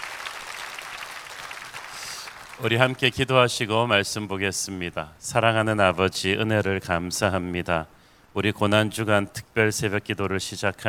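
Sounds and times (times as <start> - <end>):
audience applauding: 0.0 - 3.0
speech: 2.6 - 10.8.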